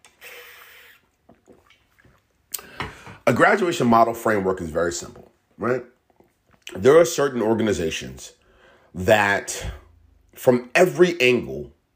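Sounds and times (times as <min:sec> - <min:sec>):
person sipping water: 0:00.0 - 0:03.0
speech: 0:03.3 - 0:05.9, 0:06.8 - 0:08.4, 0:09.0 - 0:09.8, 0:10.4 - 0:11.8.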